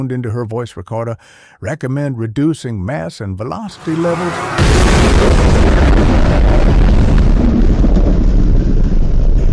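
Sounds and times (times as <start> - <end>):
speech: 0.0 - 6.9
booming roar of a giant launch: 3.8 - 9.5.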